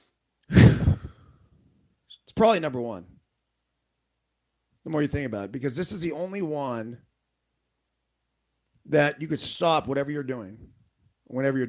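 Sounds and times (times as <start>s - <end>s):
deep breath in and out: 0.5s - 1.6s
speech: 2.4s - 3.2s, 4.9s - 7.1s, 8.8s - 11.6s.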